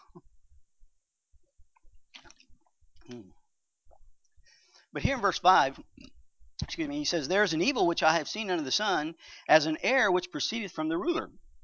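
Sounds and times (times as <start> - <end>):
gulps and swallows of water: 1.8 - 3.3
person drinking water: 1.8 - 3.3
speech: 5.0 - 6.0, 6.6 - 11.4
short breathy bursts: 9.2 - 9.5.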